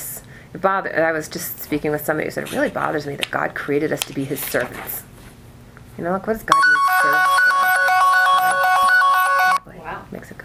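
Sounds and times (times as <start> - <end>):
speech: 0.5 - 5.1, 6.0 - 7.3
phone ringtone: 6.5 - 9.6.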